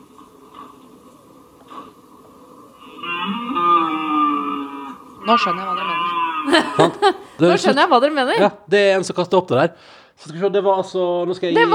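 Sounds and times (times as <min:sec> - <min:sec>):
faint hum: 0:00.0 - 0:11.7
moose bellowing in a video played on a phone: 0:02.8 - 0:06.7
speech: 0:05.3 - 0:11.7
laughter: 0:06.4 - 0:07.9.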